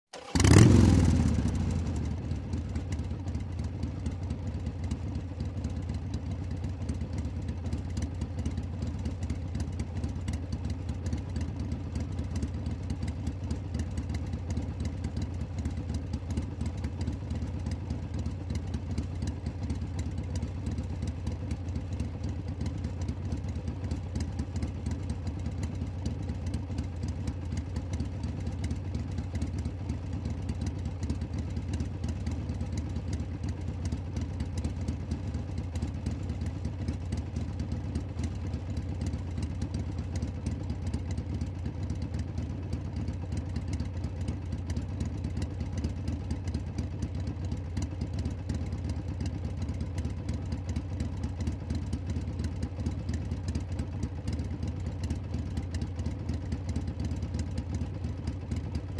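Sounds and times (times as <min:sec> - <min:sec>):
motorcycle starting: 0:00.1 - 0:04.0
motorcycle turning off: 0:00.1 - 0:58.9.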